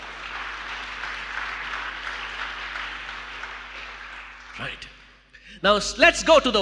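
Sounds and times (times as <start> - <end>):
audience clapping hands: 0.0 - 5.2
speech: 4.6 - 6.6.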